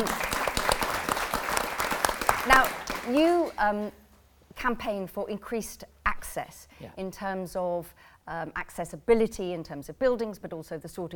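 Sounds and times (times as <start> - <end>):
audience applause: 0.0 - 3.6
speech: 2.5 - 4.0, 4.6 - 11.1.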